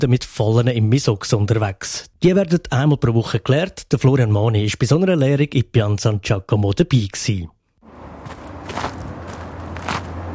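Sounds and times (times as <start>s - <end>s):
speech: 0.0s - 7.6s
soft footsteps walking into a swampy field: 7.8s - 10.3s.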